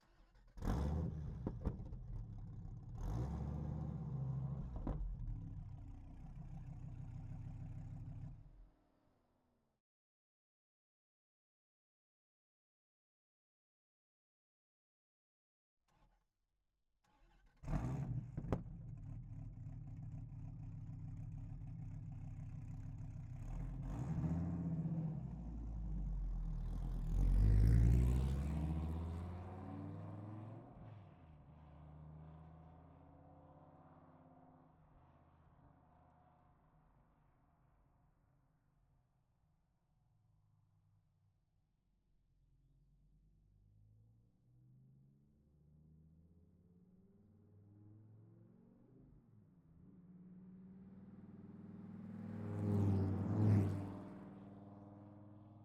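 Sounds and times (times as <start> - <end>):
Dodge Viper GTS engine: 0.1 - 8.6, 17.1 - 36.0, 43.0 - 55.6.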